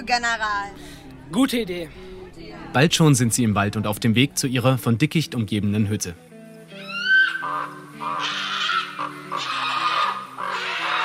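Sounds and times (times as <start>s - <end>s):
speech: 0.0s - 6.3s
soft steady music: 0.0s - 11.0s
ravens cawing harshly and raspily: 6.7s - 11.0s.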